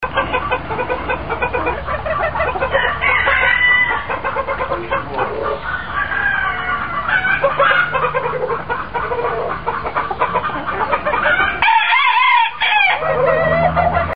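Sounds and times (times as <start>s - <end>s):
chickens clucking and cackling: 0.0s - 14.1s
rooster crowing: 2.6s - 4.2s, 5.6s - 8.1s, 11.2s - 14.1s.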